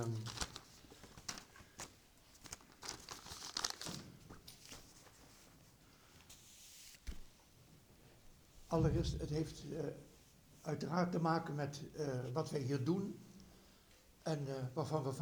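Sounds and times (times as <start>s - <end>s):
piece of paper being handled and unfolded: 0.0s - 5.5s
speech: 8.7s - 13.2s, 14.3s - 15.2s.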